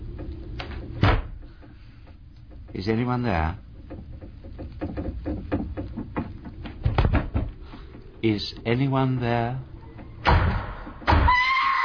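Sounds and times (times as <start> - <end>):
heavy thuds on a front door: 0.9 - 1.6, 3.8 - 7.7, 10.0 - 11.4
speech: 2.8 - 3.6, 8.2 - 9.7.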